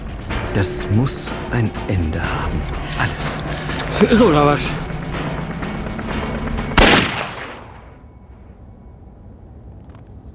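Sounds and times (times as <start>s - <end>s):
speech: 0.5s - 4.9s
pistol shot: 6.8s - 7.9s.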